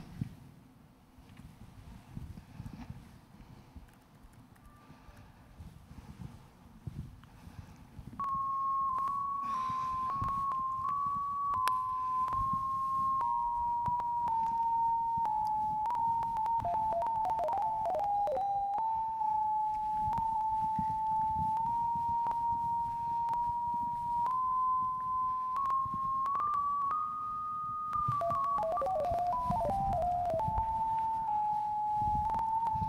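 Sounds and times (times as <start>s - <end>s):
electronic tone from laptop Wi-Fi signal strength converted to audio using Linux BPF: 8.2s - 32.8s.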